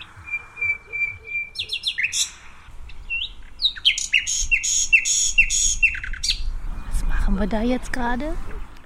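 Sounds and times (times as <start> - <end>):
nightingale song played back from a researcher's phone toward dense bushes: 0.0 - 6.4
speech: 7.4 - 8.5.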